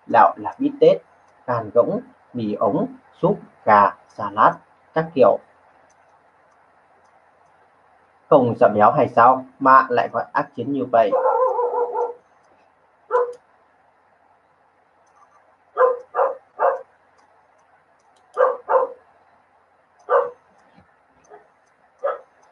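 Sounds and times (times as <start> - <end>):
speech: 0.1 - 5.5, 8.3 - 11.3
dog barking: 11.0 - 12.2, 13.1 - 13.4, 15.8 - 16.9, 18.4 - 19.0, 20.1 - 20.5, 21.3 - 22.3.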